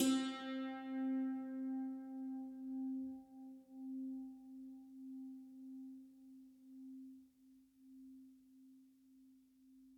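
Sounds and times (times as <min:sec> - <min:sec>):
santoor: 0:00.0 - 0:05.6.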